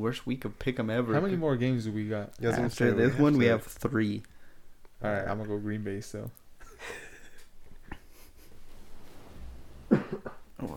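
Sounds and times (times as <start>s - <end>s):
speech: 0.0s - 4.3s, 5.0s - 7.0s
faint breathy background: 4.3s - 4.8s
person coughing harshly: 9.9s - 10.5s.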